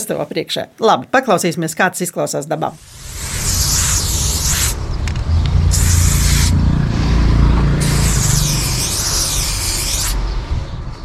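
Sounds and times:
speech: 0.0s - 3.6s
aerosol spray paint can hissing: 2.8s - 4.8s, 5.7s - 6.5s, 7.8s - 10.2s
low rumble: 2.8s - 8.8s.

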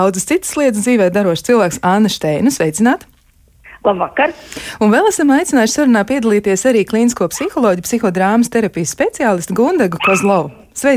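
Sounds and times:
speech: 0.0s - 3.1s, 3.8s - 10.9s
dog barking and yipping: 10.0s - 10.6s.

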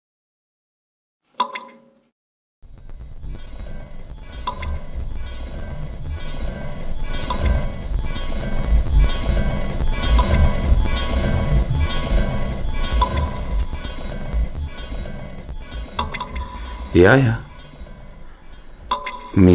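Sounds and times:
armored knight's heavy footsteps: 4.6s - 19.0s
speech: 17.0s - 17.4s, 19.4s - 19.5s.

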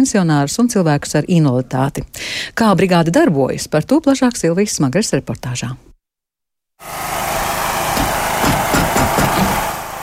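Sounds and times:
speech: 0.0s - 5.9s, 6.8s - 7.1s
engine of a specially equipped car idling at a mobile care team's base in Latvia: 6.8s - 10.0s.

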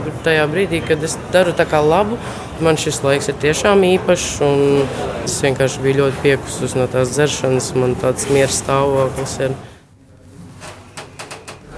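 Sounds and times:
speech: 0.1s - 9.7s
elevator door sliding shut: 10.6s - 11.7s.

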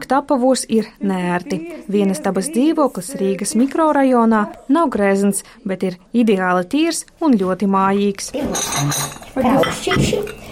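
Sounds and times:
speech: 0.1s - 10.4s
ceramic coffee cups and plates clinking as they are set down in a Riga apartment: 8.4s - 10.5s.

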